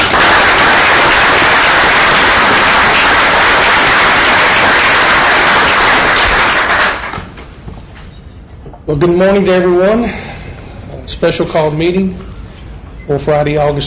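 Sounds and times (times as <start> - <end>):
audience applause at a board meeting: 0.0 - 7.4
speech: 8.9 - 10.2, 11.1 - 12.3, 13.1 - 13.8.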